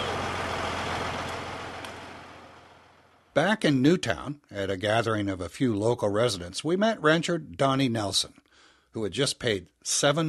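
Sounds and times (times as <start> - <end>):
heavy industry rigs and trucks roaring past in parade: 0.0 - 3.3
speech: 3.4 - 10.2.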